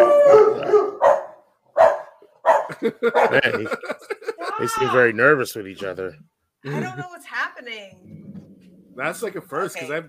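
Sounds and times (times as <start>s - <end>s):
dogs howling: 0.0s - 1.3s
dogs barking: 0.0s - 3.7s
laughter: 2.7s - 4.9s, 6.6s - 7.1s
speech: 2.8s - 8.4s, 9.0s - 10.0s.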